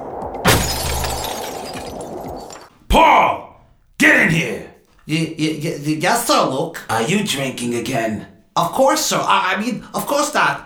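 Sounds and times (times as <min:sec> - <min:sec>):
window glass smashed with a cloth-wrapped hammer: 0:00.5 - 0:02.7
speech: 0:02.9 - 0:03.4, 0:04.0 - 0:10.6.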